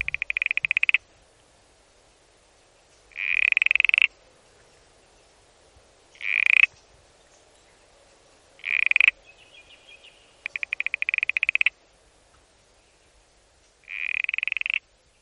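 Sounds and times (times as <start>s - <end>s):
smooth frog Geocrinia levis calling in pulsed trills and buzzy notes: 0.0s - 1.1s, 3.1s - 4.3s, 6.2s - 6.8s, 8.6s - 9.3s, 10.4s - 11.8s, 13.8s - 14.9s.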